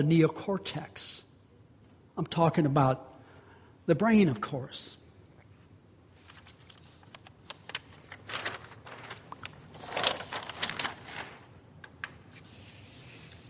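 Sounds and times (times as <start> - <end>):
speech: 0.0 - 1.3, 2.2 - 3.1, 3.9 - 5.0
sheets of paper being crumpled: 6.2 - 13.4.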